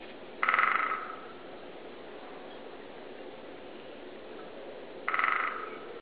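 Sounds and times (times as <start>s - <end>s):
great spotted woodpecker knocking: 0.4s - 1.4s, 5.1s - 6.0s.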